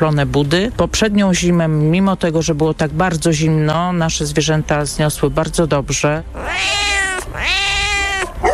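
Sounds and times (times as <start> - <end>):
speech: 0.0 - 7.6
cats meowing at an animal shelter: 6.3 - 8.4.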